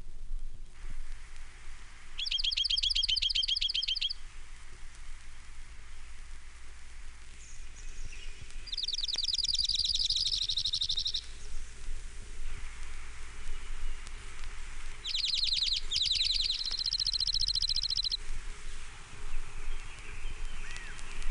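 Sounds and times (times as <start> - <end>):
steady hissing noise: 0.0 - 21.2
junco singing a dry high-pitched trill: 2.2 - 4.2, 8.6 - 11.4, 15.0 - 18.2.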